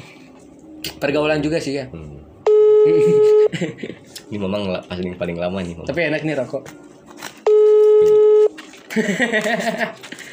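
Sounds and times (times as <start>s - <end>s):
speech: 0.9s - 6.9s, 9.0s - 10.2s
steady electronic telephone tone while dialing out: 2.5s - 3.5s, 7.5s - 8.6s
laughter: 2.9s - 4.1s, 8.9s - 10.3s.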